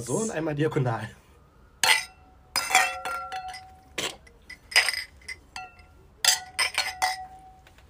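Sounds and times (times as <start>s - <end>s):
speech: 0.0s - 1.2s
drinking glasses clinking in a toast: 1.8s - 7.6s.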